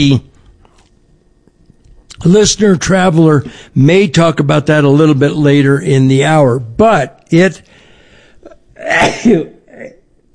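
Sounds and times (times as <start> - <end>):
speech: 0.0 - 0.3, 2.2 - 7.7, 8.8 - 10.0
short breath before sneeze: 7.7 - 8.4
loud sneeze: 8.8 - 10.0.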